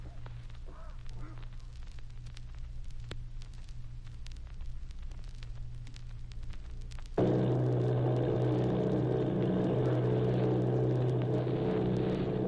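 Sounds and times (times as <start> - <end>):
army bombing plane engines droning off Bayonne New Jersey: 7.2 - 12.4.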